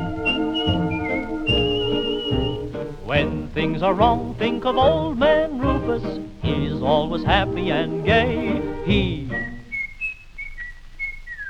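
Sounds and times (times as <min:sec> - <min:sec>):
person whistling a bright clear tune: 0:00.0 - 0:02.7, 0:07.6 - 0:11.4
steady instrumental accompaniment: 0:00.0 - 0:09.6
speech: 0:03.1 - 0:09.3.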